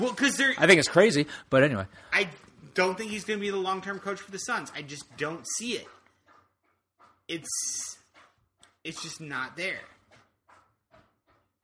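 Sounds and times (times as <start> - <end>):
speech: 0.0 - 6.0, 7.3 - 8.0, 8.8 - 10.0
dog lapping water loudly: 2.4 - 11.6.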